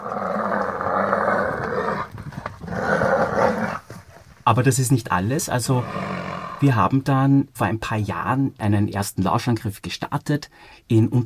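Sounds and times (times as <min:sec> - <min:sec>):
mother animal roaring to drive off a lion attacking her young: 0:00.0 - 0:04.0, 0:05.8 - 0:06.6
speech: 0:04.5 - 0:11.2.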